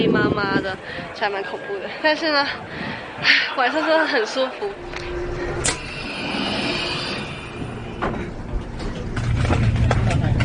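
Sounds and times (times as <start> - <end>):
speech: 0.0 - 5.2
indistinct voices: 0.0 - 10.4
passenger train interior rumble and hum travelling from Venice to Milan Italy: 2.3 - 10.4.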